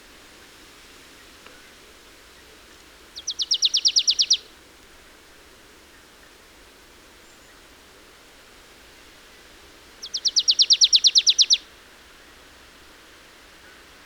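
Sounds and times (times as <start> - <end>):
Marsh tit rattling call: 3.2 - 4.4, 10.0 - 11.6.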